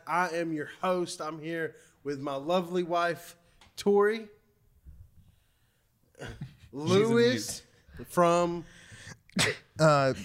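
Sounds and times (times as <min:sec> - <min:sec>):
speech: 0:00.1 - 0:04.4, 0:06.2 - 0:08.8, 0:09.4 - 0:10.2
sneeze: 0:09.4 - 0:09.8.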